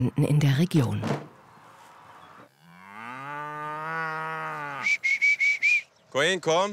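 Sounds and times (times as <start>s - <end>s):
speech: 0.0s - 1.3s, 6.2s - 6.7s
cow mooing on a farm: 2.4s - 5.0s.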